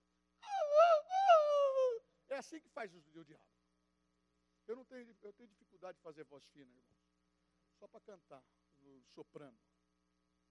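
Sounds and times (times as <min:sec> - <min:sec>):
person's voice imitating a scolded dog whimpering: 0:00.4 - 0:02.0
speech: 0:02.4 - 0:03.6, 0:04.7 - 0:07.0, 0:07.8 - 0:09.7.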